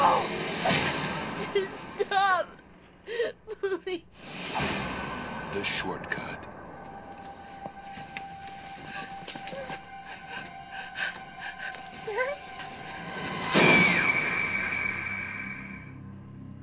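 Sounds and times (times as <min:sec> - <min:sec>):
car crash in a movie trailer: 0:00.0 - 0:02.6, 0:04.2 - 0:11.2, 0:12.0 - 0:16.1
steady tense droning backdrop: 0:00.0 - 0:16.6
rising wails: 0:05.1 - 0:16.3.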